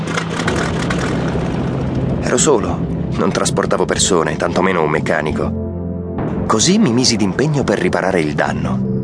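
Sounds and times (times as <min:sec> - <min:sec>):
rough engine droning and sputtering: 0:00.0 - 0:04.6
speech: 0:02.3 - 0:05.6, 0:06.5 - 0:08.9.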